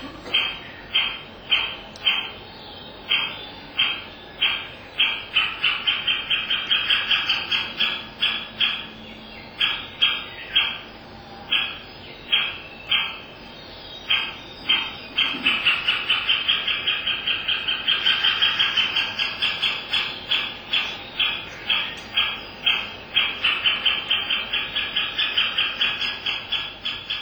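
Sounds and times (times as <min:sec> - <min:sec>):
Great Spotted Woodpecker nestlings calling with begging notes: 0:00.0 - 0:27.2.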